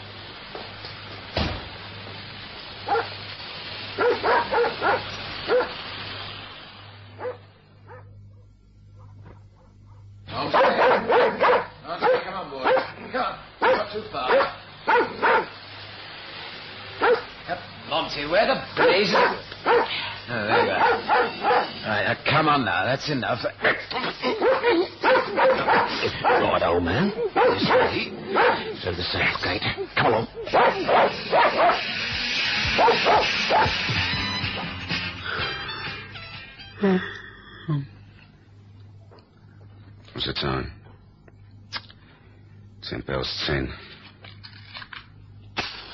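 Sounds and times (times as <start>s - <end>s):
low steady hum: 0.0s - 33.2s, 34.1s - 45.9s
dog barking: 2.9s - 3.1s, 4.0s - 5.8s, 7.2s - 13.0s, 13.6s - 15.6s, 17.0s - 17.3s, 18.8s - 21.8s, 24.3s - 28.8s, 30.0s - 31.8s, 32.8s - 33.8s
speech: 22.4s - 24.8s, 25.8s - 31.9s.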